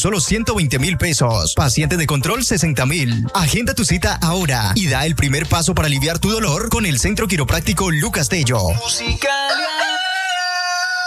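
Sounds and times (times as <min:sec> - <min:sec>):
speech: 0:00.0 - 0:09.7
rooster crowing: 0:09.4 - 0:11.0.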